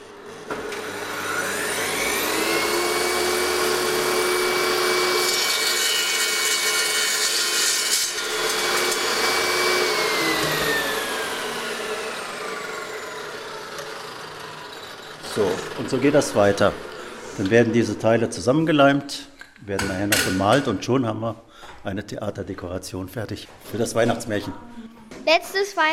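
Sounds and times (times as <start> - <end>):
power saw cutting a piece of wood for stage scenery: 0.0 - 18.2
speech: 15.8 - 25.9.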